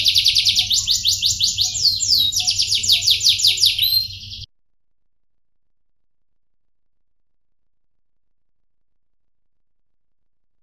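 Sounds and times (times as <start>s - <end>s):
Atlantic canary singing a loud rapid trill: 0.0s - 4.5s.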